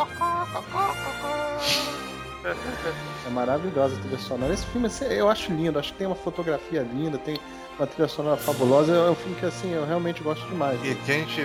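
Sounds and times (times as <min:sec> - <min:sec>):
person imitating chicken clucking: 0:00.0 - 0:02.1
laughter: 0:00.2 - 0:03.7
speech: 0:00.5 - 0:11.4.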